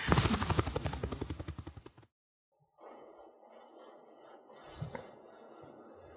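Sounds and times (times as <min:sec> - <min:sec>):
voice imitating a helicopter: 0:00.0 - 0:02.0.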